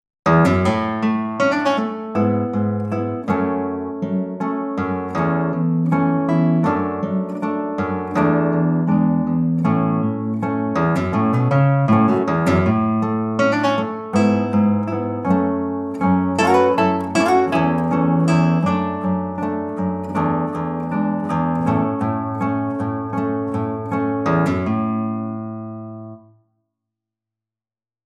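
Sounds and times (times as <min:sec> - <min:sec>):
concert guitar playing: 0:00.3 - 0:26.3.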